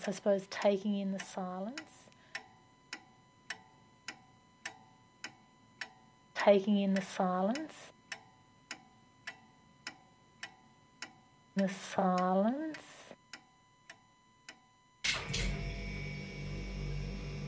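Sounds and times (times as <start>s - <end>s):
speech: 0.0s - 2.0s, 6.4s - 7.9s, 11.6s - 12.8s
clock ticking: 0.0s - 14.6s
refrigerator humming: 15.1s - 17.4s.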